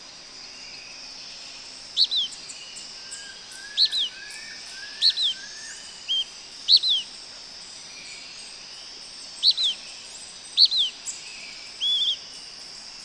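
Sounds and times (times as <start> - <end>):
insect buzzing: 0.0 - 13.0
Blackish pewee Contopus nigrescens nigrescens calling: 1.9 - 2.4, 3.1 - 7.1, 9.4 - 9.9, 10.5 - 12.3
faint low whistles: 3.0 - 7.1, 10.6 - 12.2.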